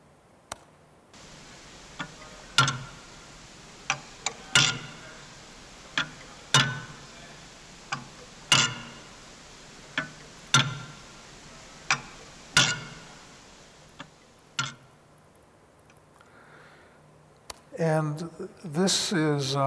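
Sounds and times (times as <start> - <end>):
faint hiss: 0.0 - 19.6
clock mechanism ticking captured through an accelerometer: 1.2 - 15.0
speech: 17.8 - 19.6.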